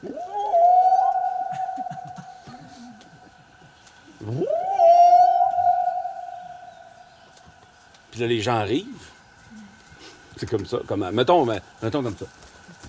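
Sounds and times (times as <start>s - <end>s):
person on a cape imitating a whale call to call whales: 0.0s - 2.3s, 4.2s - 6.7s
speech: 8.2s - 9.1s, 10.4s - 12.4s.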